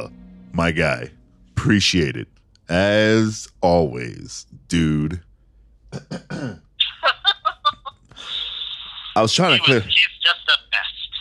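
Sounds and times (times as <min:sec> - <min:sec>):
speech: 0:00.0 - 0:05.3, 0:05.9 - 0:06.6, 0:09.2 - 0:10.6
person making raspy strained throat-clearing sounds: 0:05.9 - 0:06.7
laughter: 0:06.8 - 0:09.7.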